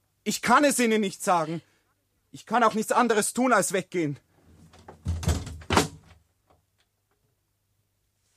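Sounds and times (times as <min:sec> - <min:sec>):
speech: 0:00.2 - 0:01.7, 0:02.3 - 0:04.3
knocking: 0:04.8 - 0:06.0.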